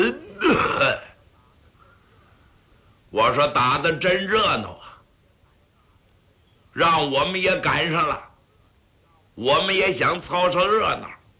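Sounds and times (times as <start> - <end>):
performer imitating old white-bearded man clearing throat: 0.0 - 1.2
speech: 3.2 - 4.8, 6.8 - 8.3, 9.4 - 11.2.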